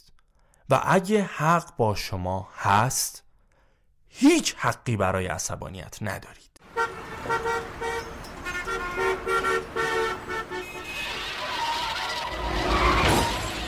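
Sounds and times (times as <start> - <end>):
speech: 0.7 - 3.2, 4.1 - 6.5
car horn honking in short honks: 6.6 - 13.6
debris rattling: 7.0 - 13.6.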